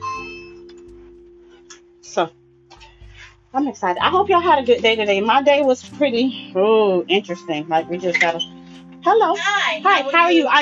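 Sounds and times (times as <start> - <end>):
doorbell chime: 0.0 - 3.2
speech: 2.1 - 2.4, 3.5 - 10.5.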